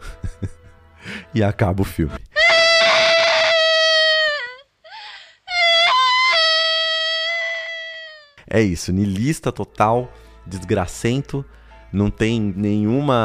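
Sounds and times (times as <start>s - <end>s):
laughter: 0.0s - 0.8s
speech: 1.3s - 2.3s, 8.5s - 13.2s
girl letting out an anguished wailing cry: 2.3s - 8.4s.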